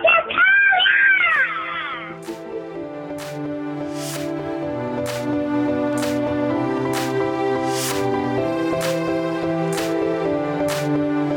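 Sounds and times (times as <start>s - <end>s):
loud shrill screaming voices: 0.2s - 2.1s
sustained droning music: 2.0s - 11.3s.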